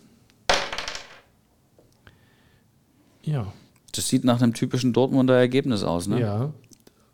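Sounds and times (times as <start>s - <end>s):
dice tumbling from a cup onto a hard surface: 0.5s - 1.3s
speech: 3.3s - 6.6s.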